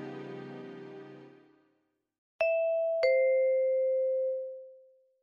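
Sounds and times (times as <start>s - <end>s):
two-tone intercom doorbell chime: 2.4s - 4.8s.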